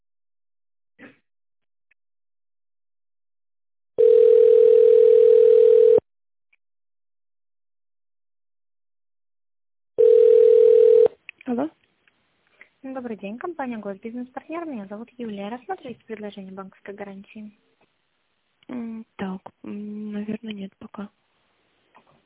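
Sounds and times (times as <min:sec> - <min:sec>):
telephone line tone on a connected call to an office phone line: 0:04.0 - 0:06.0, 0:10.0 - 0:11.1
speech: 0:13.0 - 0:17.7, 0:18.7 - 0:21.2.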